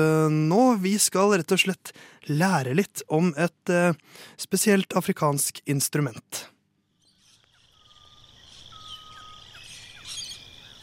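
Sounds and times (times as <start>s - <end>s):
speech: 0.0s - 6.6s
insects buzzing: 6.9s - 10.8s
exotic birdsong: 7.0s - 10.8s.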